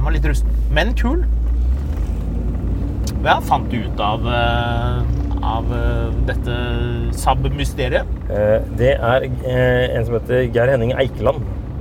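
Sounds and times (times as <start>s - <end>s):
old Land Cruiser engine rumbling while driving past: 0.0s - 11.7s
speech: 0.1s - 1.5s, 3.2s - 11.6s.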